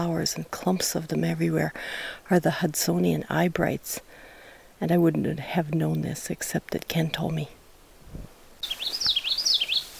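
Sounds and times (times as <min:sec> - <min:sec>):
speech: 0:00.0 - 0:04.2, 0:04.8 - 0:08.2
hiss: 0:00.0 - 0:09.9
common yellowthroat warbler singing: 0:08.6 - 0:09.9.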